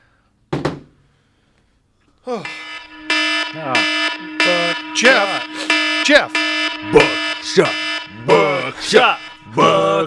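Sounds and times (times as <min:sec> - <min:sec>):
speech: 0:02.3 - 0:02.7, 0:03.5 - 0:10.0
electronic alarm horn blaring: 0:02.4 - 0:10.0.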